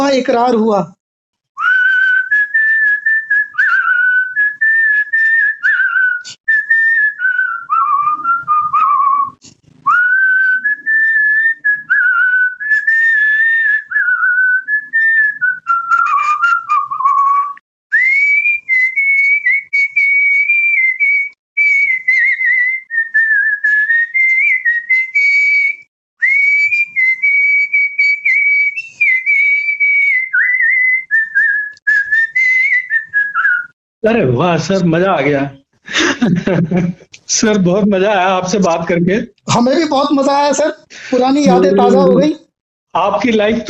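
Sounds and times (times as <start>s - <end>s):
speech: 0.1s - 1.0s, 34.1s - 35.6s, 36.2s - 43.6s
person whistling a song melody: 1.6s - 33.8s, 41.2s - 42.3s
laughter: 35.9s - 37.1s.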